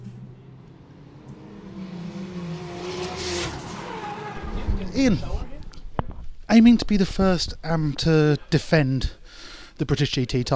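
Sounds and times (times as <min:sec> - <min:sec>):
race car engine roaring at the Oulton Park racetrack: 0:00.0 - 0:06.0
speech: 0:05.0 - 0:05.4, 0:06.5 - 0:09.2, 0:09.8 - 0:10.5.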